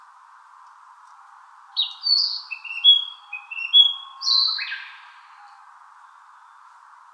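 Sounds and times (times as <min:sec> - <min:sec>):
Narcissus flycatcher singing whistles and slurred notes: 0:01.8 - 0:05.0.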